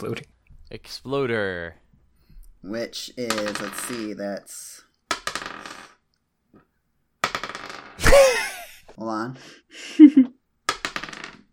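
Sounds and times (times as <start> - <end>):
speech: 0.0 - 1.8, 2.6 - 4.8, 8.1 - 8.4, 9.0 - 10.3
handful of dice clattering onto a hard surface: 3.2 - 4.2, 5.1 - 6.0, 7.2 - 8.0, 10.7 - 11.5.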